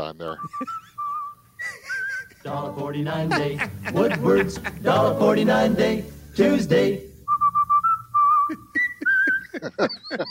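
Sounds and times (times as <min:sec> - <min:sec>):
speech: 0:00.0 - 0:01.0, 0:02.4 - 0:07.1, 0:09.6 - 0:10.2
laughter: 0:00.4 - 0:01.0, 0:01.6 - 0:05.2, 0:08.5 - 0:10.2
person whistling a short tune: 0:00.4 - 0:02.3, 0:07.2 - 0:09.6.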